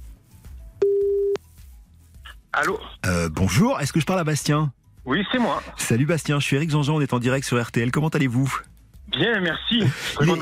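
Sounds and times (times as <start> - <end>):
telephone ringback tone of an outgoing call: 0.8 - 1.4
speech: 2.6 - 10.4.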